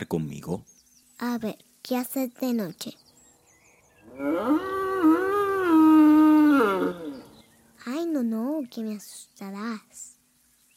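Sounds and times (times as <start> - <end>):
speech: 0.0 - 3.0, 4.2 - 5.2, 7.8 - 10.1
human voice imitating a little bull mooing: 4.1 - 7.4.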